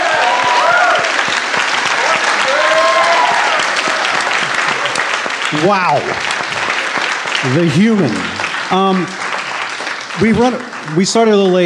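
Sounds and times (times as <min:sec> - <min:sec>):
people cheering and whooping: 0:00.0 - 0:06.8
large audience applauding: 0:00.0 - 0:11.6
speech: 0:05.5 - 0:06.3, 0:07.4 - 0:09.2, 0:10.2 - 0:11.6.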